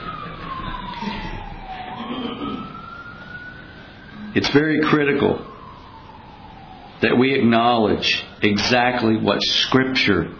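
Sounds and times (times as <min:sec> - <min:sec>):
ambulance siren passing by: 0:00.0 - 0:10.3
low traffic rumble: 0:00.0 - 0:10.3
speech: 0:04.4 - 0:05.5, 0:07.0 - 0:10.3.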